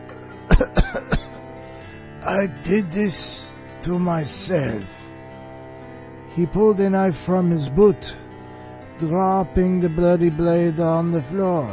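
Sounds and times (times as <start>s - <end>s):
man coughing: 0.2s - 1.4s
speech: 0.9s - 1.2s, 2.2s - 5.0s, 6.4s - 8.2s, 9.0s - 11.7s.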